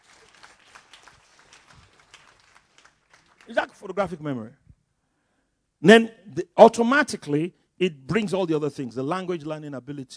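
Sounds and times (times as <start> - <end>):
audience clapping: 0.0 - 4.3
speech: 3.5 - 4.6, 5.8 - 10.1.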